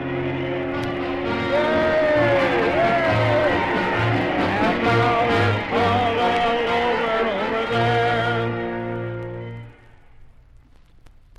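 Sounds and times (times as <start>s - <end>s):
long rising whoops: 0.0s - 6.7s
large crowd in a town cheering in celebration: 0.0s - 10.2s.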